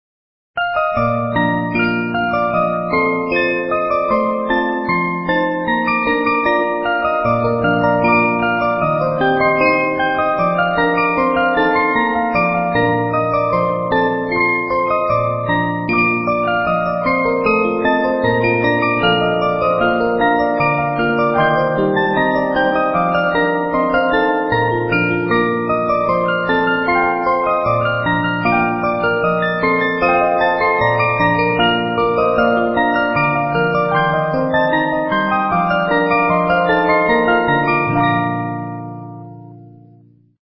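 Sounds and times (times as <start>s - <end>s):
glockenspiel: 0.6s - 39.9s.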